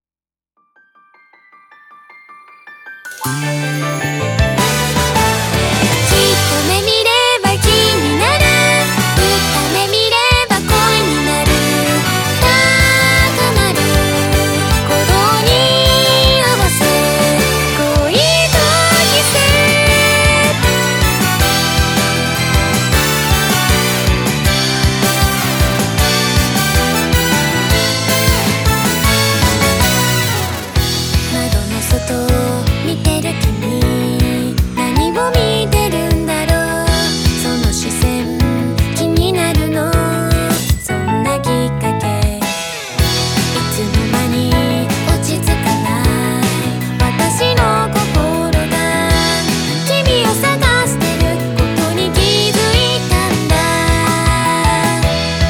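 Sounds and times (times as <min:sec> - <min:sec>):
uptempo classic anime-style girls' pop song: 0:03.2 - 0:55.4.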